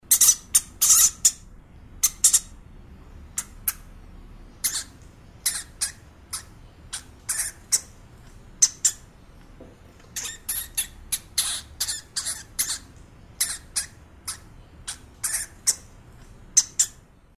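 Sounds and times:
hamster sounds: 0:00.0 - 0:02.6, 0:03.3 - 0:17.3.

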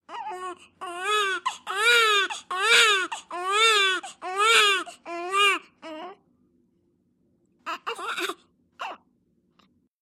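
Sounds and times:
newborn baby crying: 0:00.1 - 0:06.2, 0:07.7 - 0:09.0.

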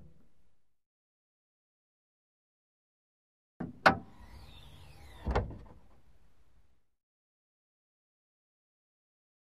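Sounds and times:
hood opening and closing: 0:03.7 - 0:06.0.

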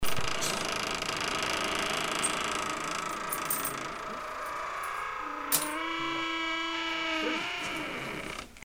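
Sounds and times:
scary door creaking: 0:00.0 - 0:08.6.

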